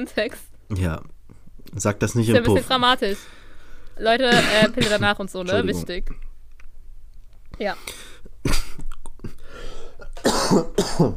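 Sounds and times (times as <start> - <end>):
speech: 0.0 - 3.4, 4.0 - 6.2, 7.6 - 8.6, 10.5 - 11.1
person in a coughing fit: 4.2 - 5.8, 8.4 - 11.1.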